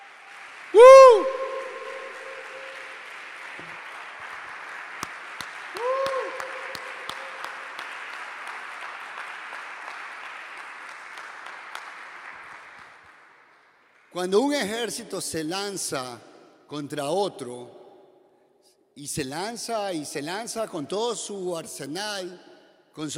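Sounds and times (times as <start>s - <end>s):
audience applauding: 0.0s - 14.4s
person whooping: 0.8s - 2.9s, 5.7s - 7.4s
speech: 14.2s - 17.8s, 19.0s - 23.1s.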